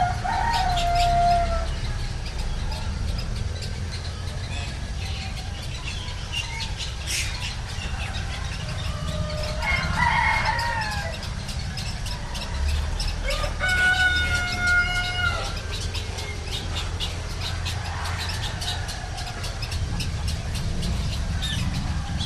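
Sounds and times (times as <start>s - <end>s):
rooster crowing in a village in Indonesia: 0.0s - 2.0s, 7.8s - 11.4s, 12.0s - 16.7s, 17.3s - 19.8s
steady low rumble of traffic: 0.0s - 22.2s.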